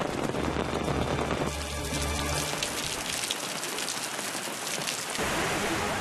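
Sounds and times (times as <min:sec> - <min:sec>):
low rumble: 0:00.0 - 0:03.2
steady rain striking surfaces: 0:00.0 - 0:05.9.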